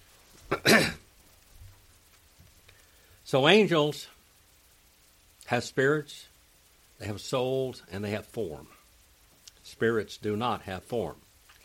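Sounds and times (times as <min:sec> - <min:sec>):
speech: 0:00.5 - 0:01.0, 0:03.3 - 0:04.2, 0:05.5 - 0:06.3, 0:07.0 - 0:08.8, 0:09.7 - 0:11.2
person clearing throat: 0:00.5 - 0:01.1.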